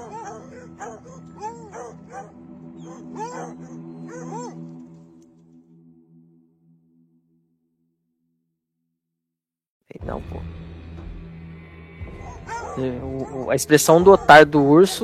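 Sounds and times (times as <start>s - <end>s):
group of dogs yelping and whining: 0.0s - 5.0s, 12.2s - 15.0s
speech: 10.0s - 10.6s, 12.8s - 15.0s.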